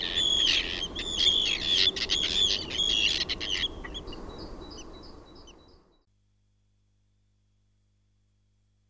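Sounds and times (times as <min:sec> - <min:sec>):
Arctic tern calling: 0:00.0 - 0:06.0.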